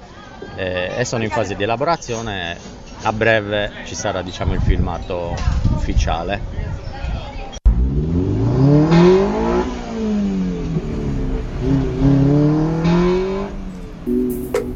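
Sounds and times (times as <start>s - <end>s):
speech: 0.6s - 6.9s
Lotus sports car engine revving and pulling away through gear changes: 7.7s - 14.7s
sharp click: 14.2s - 14.7s.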